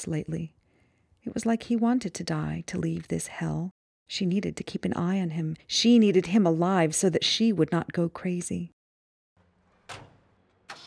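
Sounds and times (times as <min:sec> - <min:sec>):
speech: 0:00.0 - 0:00.6, 0:01.2 - 0:08.8
truck engine starting: 0:09.4 - 0:10.8.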